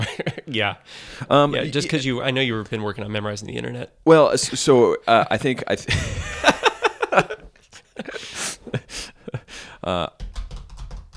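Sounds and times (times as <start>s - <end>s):
laughter: 0.0s - 0.6s, 5.9s - 9.5s
speech: 0.5s - 6.5s, 7.2s - 7.4s, 9.8s - 10.2s
heavy forceful computer keyboard typing: 10.1s - 11.1s.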